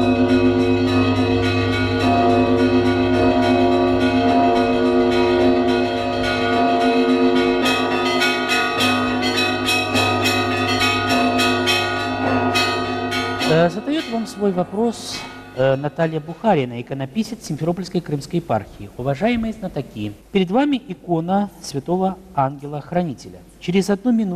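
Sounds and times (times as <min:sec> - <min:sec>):
church bells pealing in several tones: 0:00.0 - 0:18.3
speech: 0:14.4 - 0:24.3.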